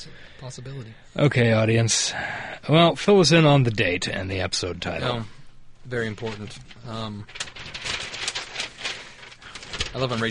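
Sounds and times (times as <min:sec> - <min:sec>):
speech: 0:00.0 - 0:07.8, 0:09.9 - 0:10.2
paper flapping and rustling: 0:05.9 - 0:10.2.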